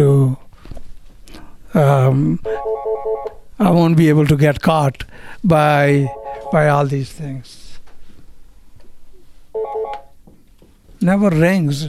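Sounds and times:
speech: 1.8s - 2.6s, 3.6s - 7.6s, 11.0s - 11.8s
electronic telephone ringing: 2.5s - 3.3s, 6.1s - 6.8s, 9.6s - 10.1s.

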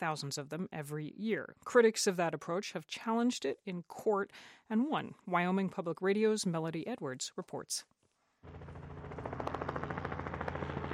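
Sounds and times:
speech: 0.0s - 8.8s
helicopter rotor chop over a canyon: 8.4s - 10.9s.

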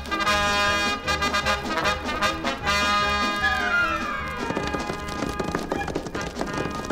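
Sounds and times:
loud orchestral music: 0.0s - 4.8s
horse hooves galloping: 0.0s - 6.9s.

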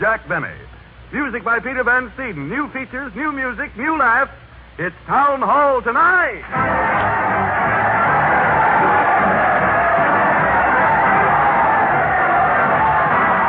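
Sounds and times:
speech: 0.0s - 7.4s
large crowd cheering and shouting for a parade of stars: 6.5s - 13.4s.

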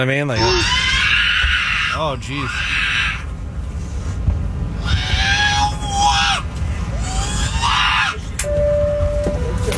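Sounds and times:
speech: 0.0s - 0.8s, 2.0s - 2.8s
steady low rumble of noise: 0.0s - 9.7s
baby screaming: 0.4s - 3.3s, 4.8s - 8.4s.

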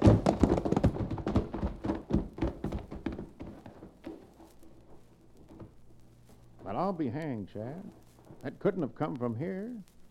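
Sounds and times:
ridden horses' hooves pounding: 0.0s - 6.0s
speech: 6.8s - 10.0s.

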